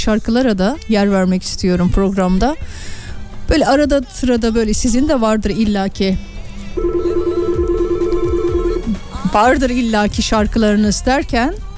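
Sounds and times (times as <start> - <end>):
speech: 0.0 - 7.1, 9.3 - 11.7
telephone ringing in a radio studio: 6.8 - 9.0.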